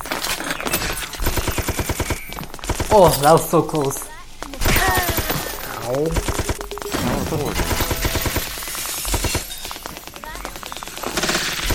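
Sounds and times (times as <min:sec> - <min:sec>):
video game gunfire: 0:00.0 - 0:11.7
speech: 0:02.9 - 0:04.1, 0:05.9 - 0:06.4, 0:07.3 - 0:07.8
brief tonal video game effects: 0:03.0 - 0:11.0.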